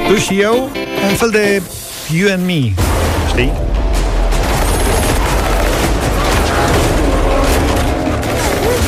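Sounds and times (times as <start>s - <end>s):
speech: 0.1s - 3.7s
heavy rumbling low end and booms: 2.6s - 8.2s
dense gunfire in a movie trailer: 2.8s - 8.8s.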